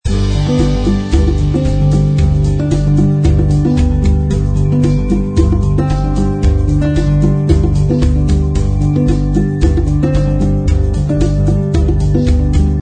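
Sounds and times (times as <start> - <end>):
musical vamp without piano: 0.1 - 12.8.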